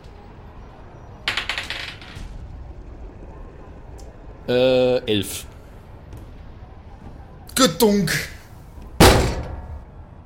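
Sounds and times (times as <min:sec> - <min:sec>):
speech: 0:04.5 - 0:05.5, 0:07.6 - 0:08.4
metal shoulder ramming into a door at full speed: 0:09.0 - 0:09.8.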